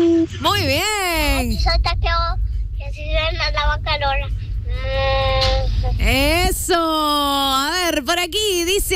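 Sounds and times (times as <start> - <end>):
steady low rumbling background: 0.0 - 8.9
speech: 0.4 - 8.9
child imitating cow moo: 4.7 - 5.7.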